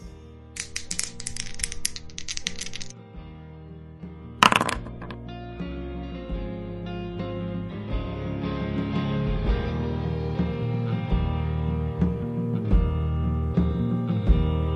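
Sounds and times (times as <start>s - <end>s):
steady musical backdrop: 0.0s - 14.7s
dice rattling: 0.6s - 2.9s, 4.4s - 5.2s.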